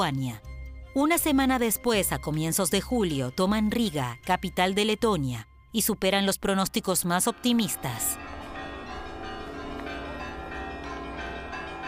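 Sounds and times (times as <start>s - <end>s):
speech: 0.0s - 8.2s
bells ringing with sustained metallic tones: 7.2s - 11.8s.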